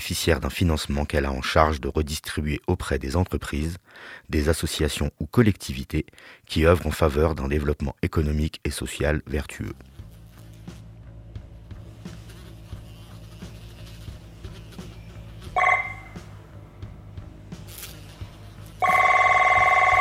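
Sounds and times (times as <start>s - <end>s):
speech: 0.0s - 9.9s
electronic telephone ring: 15.6s - 16.2s, 18.8s - 19.9s.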